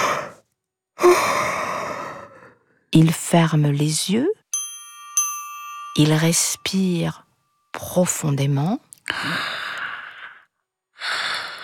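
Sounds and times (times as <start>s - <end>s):
long breathy yawn voiced for a cuddly toy: 0.0s - 0.4s, 1.0s - 2.7s, 9.1s - 11.6s
speech: 3.0s - 4.4s, 6.0s - 7.2s, 7.8s - 9.6s.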